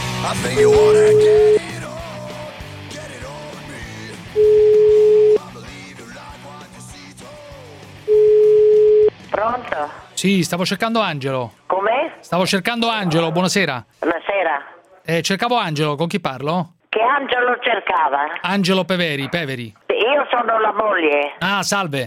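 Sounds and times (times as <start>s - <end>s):
speech: 0.3s - 1.5s, 9.8s - 22.0s
ringback tone on an outgoing phone call to a home: 0.6s - 1.7s, 4.4s - 5.4s, 8.1s - 9.1s.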